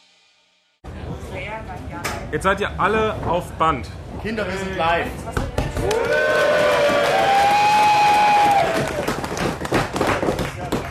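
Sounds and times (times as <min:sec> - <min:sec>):
speech: 0:01.6 - 0:06.8
sustained rising and falling whoop: 0:05.8 - 0:09.1
live crowd roaring at Wacken: 0:05.8 - 0:09.2
scattered claps: 0:05.8 - 0:10.9.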